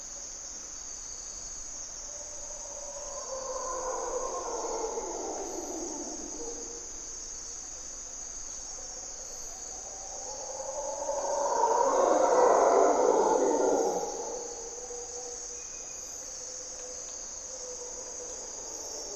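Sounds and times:
steady high insect drone: 0:00.0 - 0:19.1
Mantled howler monkey roaring in primary hardwood forest at morning twilight: 0:02.8 - 0:06.9, 0:10.1 - 0:15.3.

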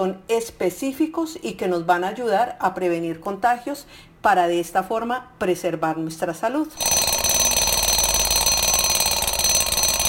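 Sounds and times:
speech: 0:00.0 - 0:07.1
alarm clock ringing: 0:06.8 - 0:10.0.

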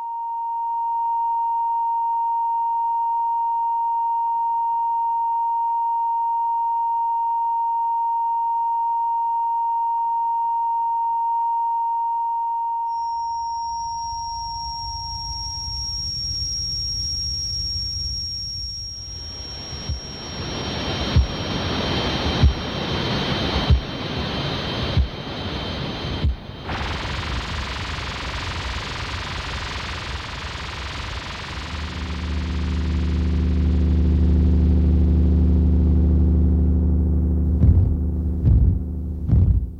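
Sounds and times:
simulated tinnitus high-pitched ringing tone: 0:00.0 - 0:36.9
simulated tinnitus rushing hiss with a thin high whine: 0:13.0 - 0:33.6
soft low thump: 0:37.5 - 0:39.7.

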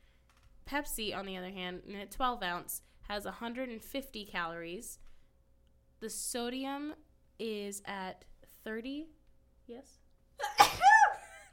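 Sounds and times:
speech: 0:00.7 - 0:05.0, 0:06.0 - 0:10.8
woman sneezing: 0:10.4 - 0:11.3.

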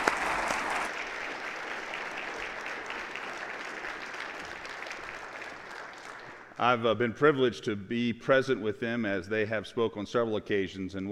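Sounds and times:
church audience applauding: 0:00.0 - 0:06.6
speech: 0:06.6 - 0:11.1.

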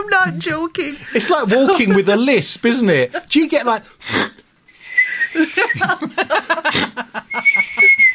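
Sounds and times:
speech: 0:00.0 - 0:04.3, 0:05.4 - 0:07.5
bursts of laughter and chuckling: 0:00.3 - 0:02.5, 0:05.2 - 0:08.1
thin steady high-pitched whistle: 0:04.8 - 0:05.7, 0:07.3 - 0:08.1.

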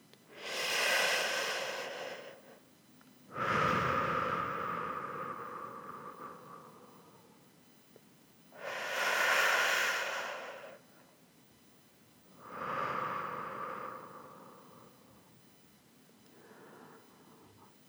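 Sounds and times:
slow deep breathing in and out: 0:00.3 - 0:02.6, 0:03.3 - 0:07.6, 0:08.6 - 0:11.1, 0:12.3 - 0:15.6, 0:16.2 - 0:17.8.

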